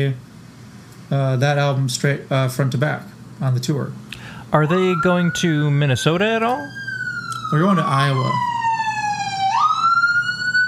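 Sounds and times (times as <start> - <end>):
speech: 0.0 - 0.2, 1.1 - 6.8, 7.5 - 8.5
fire engine siren wailing near a fire department: 4.6 - 10.6.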